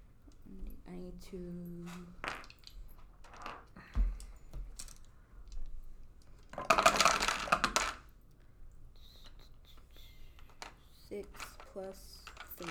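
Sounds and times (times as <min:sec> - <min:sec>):
speech: 0:01.1 - 0:02.3, 0:11.8 - 0:12.6
dice clattering across a hard tabletop in a game: 0:01.8 - 0:08.1, 0:10.2 - 0:12.6.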